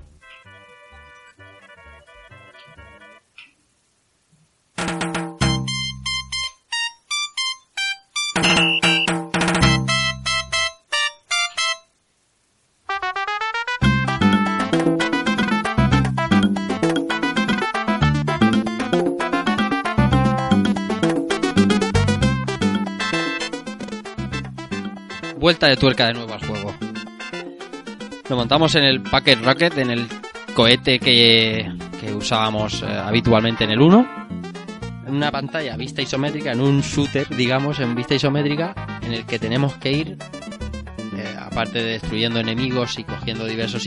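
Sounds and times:
bright electronic video game level music: 0.0s - 3.3s, 4.8s - 11.9s, 12.9s - 43.8s
speech: 25.5s - 26.5s, 28.3s - 34.2s, 35.1s - 40.3s, 41.6s - 43.8s.

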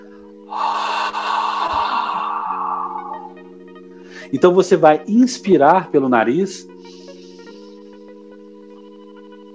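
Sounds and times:
soft sustained tones: 0.0s - 4.2s, 6.6s - 9.5s
long breathy exhale through the open mouth from the throat during a breathing exercise: 0.0s - 4.3s, 6.7s - 8.2s
speech: 4.3s - 6.7s.

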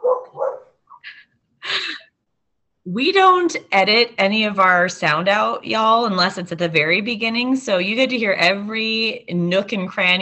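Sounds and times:
sleeping puppy yipping and whimpering: 0.0s - 0.7s
speech: 2.9s - 10.1s.

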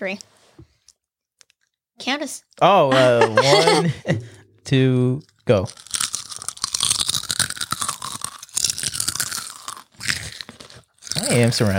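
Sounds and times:
speech: 0.0s - 0.4s, 2.0s - 5.9s, 11.3s - 11.7s
laughter: 2.9s - 4.4s
folded crisp snacks being bitten and chewed by several people: 5.3s - 11.7s.

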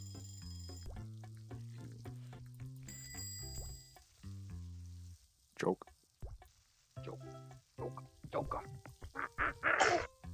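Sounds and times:
speech: 5.6s - 5.9s, 7.8s - 8.9s
person sneezing: 9.7s - 10.1s.

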